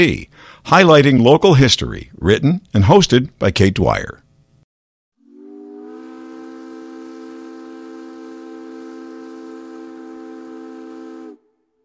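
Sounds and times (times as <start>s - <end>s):
speech: 0.0s - 4.2s
ferry steam whistle blast: 5.2s - 11.8s.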